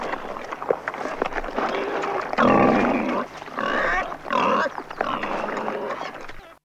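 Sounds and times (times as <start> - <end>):
wild boar grunting and squealing: 1.0 - 6.6.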